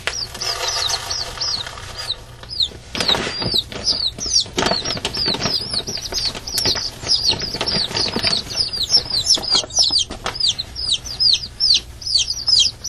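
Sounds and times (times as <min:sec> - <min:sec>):
chicken chicks peeping in a dense chorus: 0:00.0 - 0:12.8.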